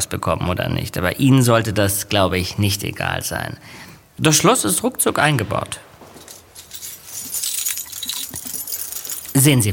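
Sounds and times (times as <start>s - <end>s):
speech: 0.0s - 5.9s, 9.3s - 9.7s
bunch of keys jangling: 6.1s - 9.7s.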